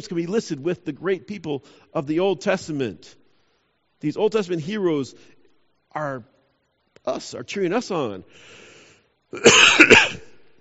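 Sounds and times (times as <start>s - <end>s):
speech: 0.0s - 3.2s, 4.0s - 5.4s, 6.0s - 6.3s, 7.0s - 8.7s, 9.3s - 10.0s
man coughing while recovering from a cough and sore throat: 9.4s - 10.4s.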